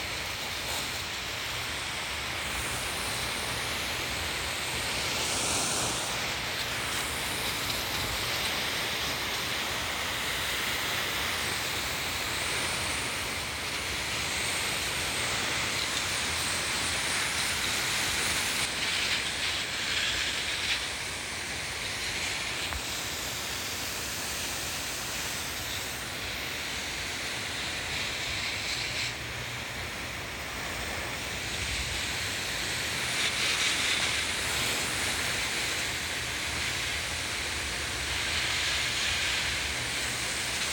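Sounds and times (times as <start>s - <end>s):
garden hose spraying water on plants: 0.0s - 40.7s.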